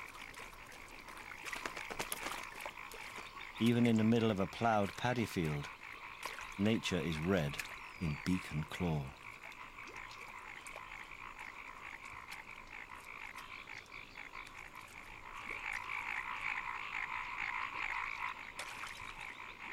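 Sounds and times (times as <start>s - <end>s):
chorus of frogs croaking in a ploughed paddy field: 0.0s - 19.7s
speech: 3.6s - 5.8s, 6.6s - 9.2s.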